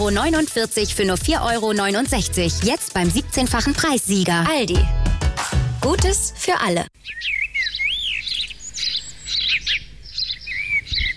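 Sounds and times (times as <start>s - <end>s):
speech: 0.0s - 5.0s, 5.8s - 7.4s
birds chirping: 7.0s - 11.1s.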